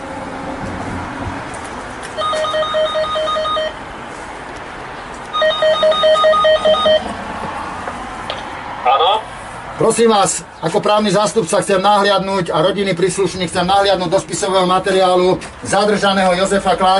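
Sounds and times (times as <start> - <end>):
telephone ringback tone while placing a call: 2.2 - 3.8, 5.4 - 7.1
speech: 9.8 - 16.9.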